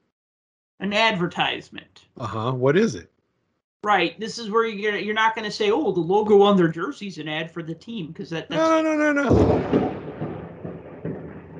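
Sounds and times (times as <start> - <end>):
speech: 0.8 - 3.1, 3.8 - 10.0
rolling thunder from a lightning storm in Chicago: 9.3 - 11.5.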